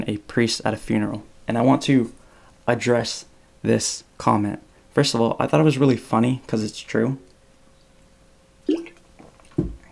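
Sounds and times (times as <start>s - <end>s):
speech: 0.1s - 7.3s
person sipping water with soft wet gulps: 8.7s - 9.9s.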